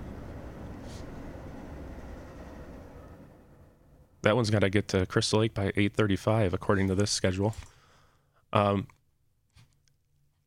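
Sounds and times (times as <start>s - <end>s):
train passing: 0.0s - 4.2s
speech: 4.2s - 7.7s, 8.5s - 9.0s.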